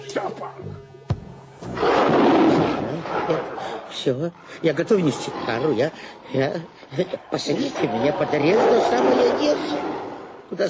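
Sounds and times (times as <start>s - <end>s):
big cat roaring: 1.8s - 3.8s, 4.7s - 6.0s, 7.5s - 10.5s
speech: 3.3s - 10.6s.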